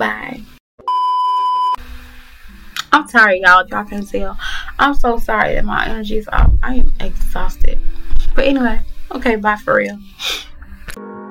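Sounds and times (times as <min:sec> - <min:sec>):
phone giving a high electronic beep: 0:00.8 - 0:01.8
speech: 0:03.0 - 0:10.5.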